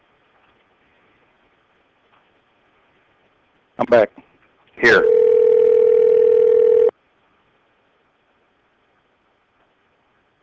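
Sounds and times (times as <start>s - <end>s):
speech: 3.8s - 4.2s, 4.8s - 5.2s
telephone dial tone: 4.9s - 6.9s.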